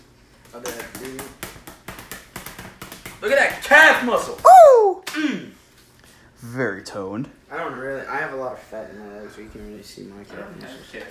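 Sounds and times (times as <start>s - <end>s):
speech: 0.5s - 1.4s, 3.2s - 5.5s, 6.4s - 11.1s
fly swatter slapping buttocks: 0.6s - 3.8s.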